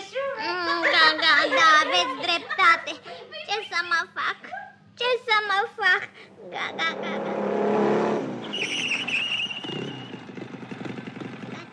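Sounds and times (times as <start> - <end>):
laughter: 0.1 - 4.8
speech: 5.0 - 7.8
motorcycle engine revving: 6.5 - 11.7.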